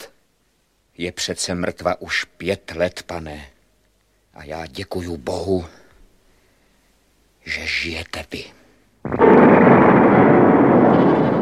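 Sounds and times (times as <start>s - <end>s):
speech: 1.0s - 3.5s, 4.4s - 5.8s, 7.4s - 9.4s
mighty explosion shaking a castle with roaring rumble: 9.0s - 11.3s.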